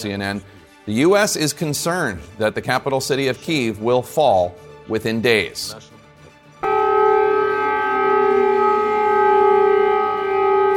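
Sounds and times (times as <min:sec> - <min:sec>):
speech: 0:00.0 - 0:05.9
air raid warning siren wailing: 0:06.6 - 0:10.7.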